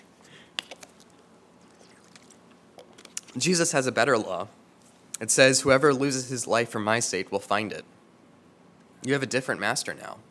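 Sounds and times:
person sipping water: 0.0s - 3.4s
wet mouth clicks: 0.0s - 3.4s
quiet noise: 0.0s - 10.2s
person swallowing softly: 1.6s - 2.4s
speech: 3.4s - 4.6s, 5.2s - 8.0s, 9.0s - 10.2s.

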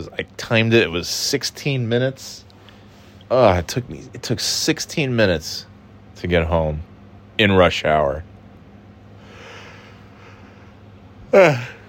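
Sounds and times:
speech: 0.0s - 2.5s, 3.3s - 8.3s, 11.3s - 11.8s
person yawning: 11.3s - 11.8s.

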